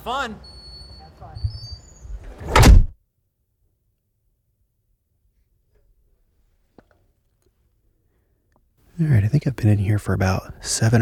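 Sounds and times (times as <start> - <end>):
speech: 0.0 - 0.5, 9.0 - 10.9
heavy doors of an anechoic chamber slamming shut: 2.3 - 3.0.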